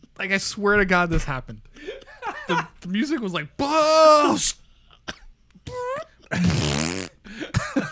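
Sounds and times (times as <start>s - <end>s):
speech: 0.2s - 5.2s, 6.3s - 6.9s
voice imitating a fart: 6.3s - 7.2s.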